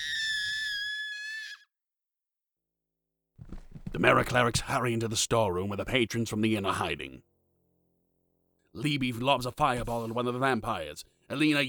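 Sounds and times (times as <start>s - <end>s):
person screaming frantically: 0.0s - 1.6s
speech: 4.0s - 7.3s, 8.8s - 11.6s.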